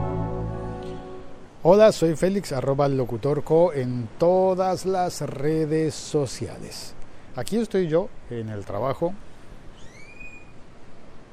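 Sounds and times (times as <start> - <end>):
steady low rumbling noise: 0.0 - 2.0
speech: 1.6 - 9.3
rising whistled bird call: 9.8 - 10.6.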